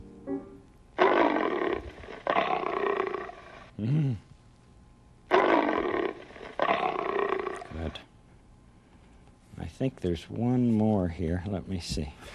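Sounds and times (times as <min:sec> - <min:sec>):
lion roaring: 0:01.0 - 0:03.7, 0:05.3 - 0:08.0
speech: 0:09.8 - 0:12.3.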